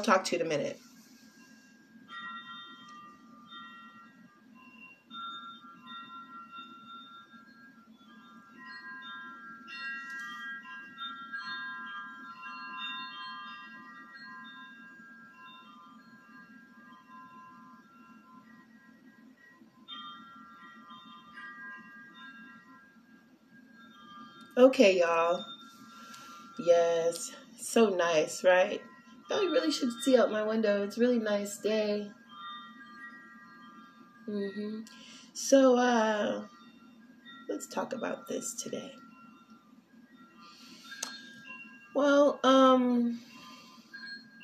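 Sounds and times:
speech: 0.0 - 0.9, 24.6 - 25.5, 26.6 - 32.2, 34.3 - 36.6, 37.5 - 39.0, 42.0 - 43.3
wind chimes ringing in the wind: 0.0 - 44.4.

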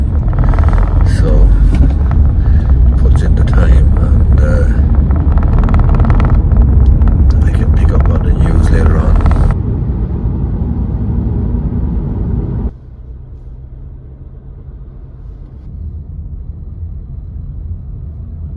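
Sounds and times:
loud road roar of a car in heavy morning traffic: 0.0 - 18.5
steady low car engine and tyre rumble: 0.0 - 18.5.

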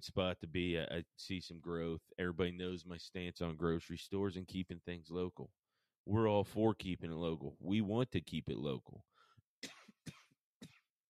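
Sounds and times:
speech: 0.0 - 10.2
quick harsh coughs: 9.6 - 11.0.

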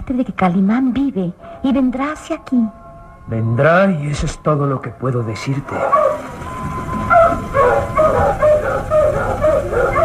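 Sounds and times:
speech: 0.1 - 6.4
dog barking: 5.7 - 6.2, 7.1 - 10.0.

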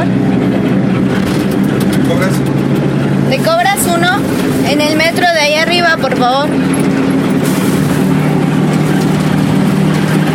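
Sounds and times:
car engines idling: 0.0 - 10.3
street traffic rumble: 0.0 - 10.3
speech: 5.2 - 7.0.

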